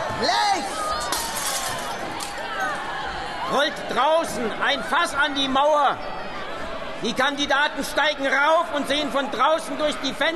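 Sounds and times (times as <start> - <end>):
speech: 0.2 - 0.7, 3.5 - 6.1, 7.0 - 10.3
coloured stained glass window being smashed in: 1.0 - 2.0.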